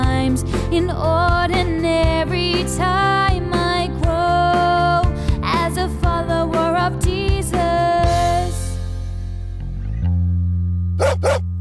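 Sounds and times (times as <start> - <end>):
sustained musical backing: 0.0 - 11.5
dog barking: 11.0 - 11.4.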